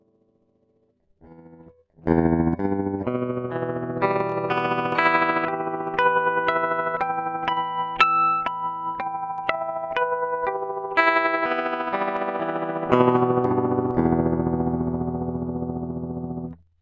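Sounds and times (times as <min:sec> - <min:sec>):
E minor arpeggio with tremolo: 0:03.0 - 0:16.5.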